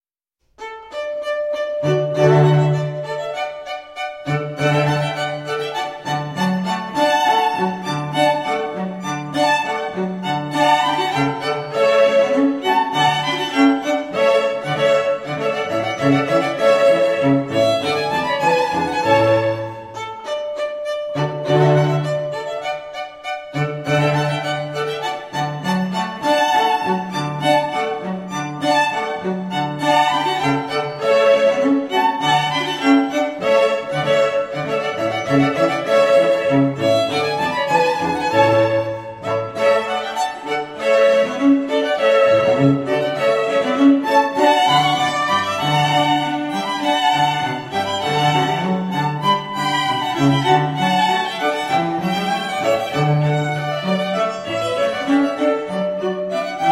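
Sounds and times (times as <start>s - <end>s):
cello in a string quartet piece: 0.6s - 56.7s.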